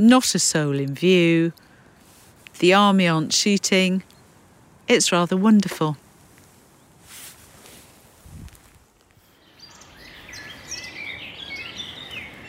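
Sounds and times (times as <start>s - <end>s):
speech: 0.0s - 1.6s, 2.6s - 4.1s, 4.9s - 6.0s
soft breeze outdoors: 0.0s - 12.4s
faint rustling: 1.6s - 2.7s, 5.8s - 9.6s
footstep: 5.6s - 9.3s
several birds chirping and trilling outdoors: 9.3s - 12.4s.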